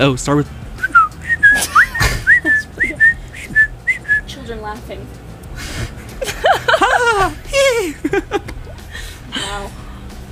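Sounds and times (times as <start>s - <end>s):
speech: 0.0s - 0.6s, 4.7s - 5.2s, 5.8s - 8.5s
person whistling chirps and trills imitating birdsong: 0.8s - 4.3s
laughter: 1.3s - 3.1s, 5.6s - 9.5s.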